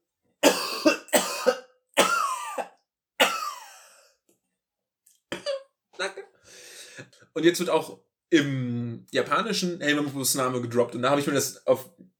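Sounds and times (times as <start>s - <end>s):
harsh coughs with a rasping tail: 0.4s - 4.0s, 5.4s - 6.2s
speech: 6.0s - 6.3s, 7.0s - 12.1s.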